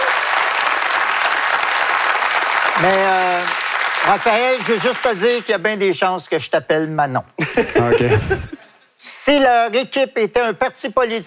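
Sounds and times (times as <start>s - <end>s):
studio audience applause: 0.0s - 5.8s
speech: 2.8s - 11.2s
laughter: 7.4s - 8.6s.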